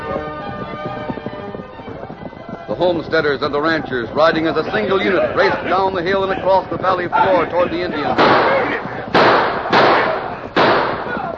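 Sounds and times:
speech: 2.8s - 8.8s
laughter: 4.5s - 10.6s
gunshots in an Old West battle scene from a radio drama: 8.0s - 11.3s.

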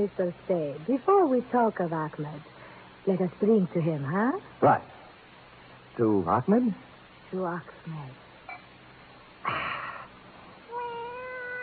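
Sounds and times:
speech: 0.0s - 5.0s, 6.0s - 8.2s, 9.4s - 9.8s
cat meowing: 10.7s - 11.6s.

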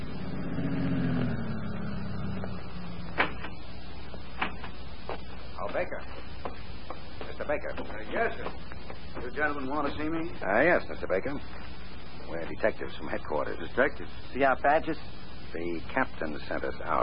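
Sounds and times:
car engine rumbling and idling to a stop: 0.0s - 17.0s
car doors opening and shutting: 3.1s - 3.6s
faint shuffling: 4.0s - 13.0s
speech: 5.8s - 6.2s, 7.5s - 11.7s, 12.3s - 17.0s.

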